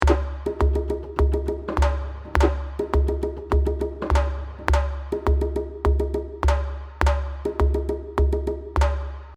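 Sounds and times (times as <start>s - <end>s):
bongos playing: 0.0s - 9.3s.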